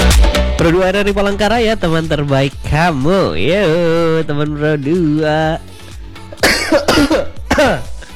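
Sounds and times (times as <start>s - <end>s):
speech: 0.6s - 5.7s, 6.7s - 7.9s
person coughing harshly: 6.3s - 8.1s.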